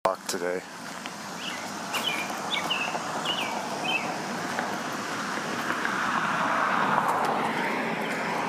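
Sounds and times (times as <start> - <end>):
speech: 0.3 - 0.8
car passing by: 1.2 - 8.4
bird chirps: 1.4 - 4.1.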